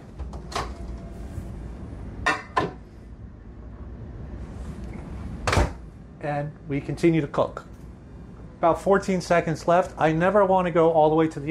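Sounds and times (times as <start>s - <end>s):
microwave door clicking open and thudding shut: 0.1s - 1.1s, 5.4s - 5.8s
speech: 6.2s - 7.7s, 8.6s - 11.4s.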